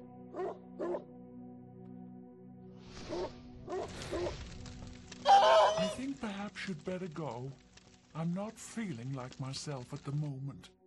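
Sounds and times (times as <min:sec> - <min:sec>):
dog barking: 0:00.3 - 0:01.1, 0:03.1 - 0:04.3
speech: 0:06.2 - 0:10.8.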